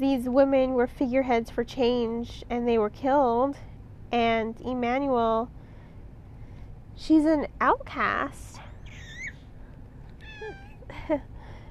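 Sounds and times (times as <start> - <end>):
speech: 0.0 - 5.6, 7.0 - 8.6, 10.5 - 11.3
low steady hum: 0.0 - 11.7
female pet cat meowing: 10.2 - 10.8.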